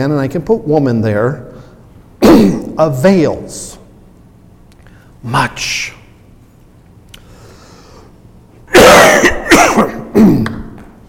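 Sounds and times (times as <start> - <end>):
speech: 0.0 - 1.5, 2.3 - 3.8, 5.2 - 6.0
person with a tickle in the throat coughing and clearing it: 2.2 - 2.8, 8.7 - 10.7.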